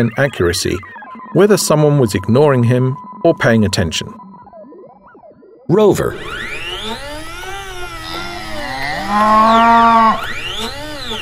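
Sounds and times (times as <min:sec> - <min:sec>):
speech: 0:00.0 - 0:04.2, 0:05.7 - 0:06.5, 0:09.1 - 0:10.4
cows mooing in a field: 0:08.1 - 0:10.4.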